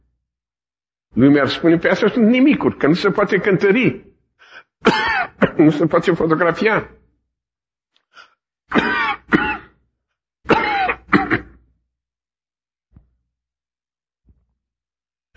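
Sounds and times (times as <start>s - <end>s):
speech: 1.2s - 4.1s, 4.8s - 7.0s
man clearing his throat: 4.8s - 5.8s, 8.7s - 9.8s, 10.5s - 11.6s
man coughing: 4.8s - 5.8s, 8.7s - 9.8s, 10.5s - 11.6s.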